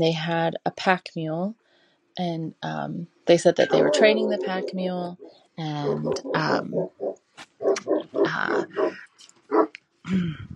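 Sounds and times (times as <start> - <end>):
speech: 0.0 - 1.6, 2.2 - 10.5
dog grunting barks: 3.6 - 9.7.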